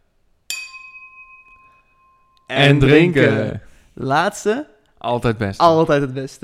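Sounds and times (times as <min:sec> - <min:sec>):
empty glasses clinking in a toast: 0:00.5 - 0:03.2
pure ringing tone of glasses: 0:00.5 - 0:03.2
speech: 0:02.5 - 0:06.4.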